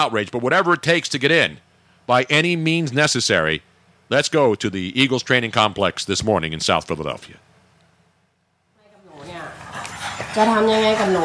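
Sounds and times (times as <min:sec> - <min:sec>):
speech: 0:00.0 - 0:07.5, 0:10.4 - 0:11.2
dogs panting: 0:09.2 - 0:11.2.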